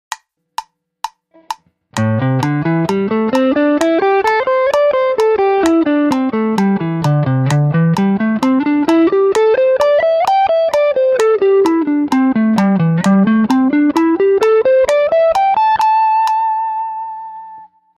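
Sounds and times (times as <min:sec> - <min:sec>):
music at 130 bpm: 0:00.1 - 0:17.9.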